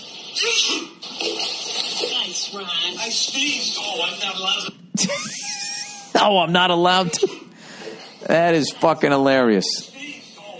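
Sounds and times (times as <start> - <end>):
water splashing and sloshing: 0.0 - 3.4
speech: 2.5 - 5.6, 6.2 - 7.5, 8.3 - 9.9.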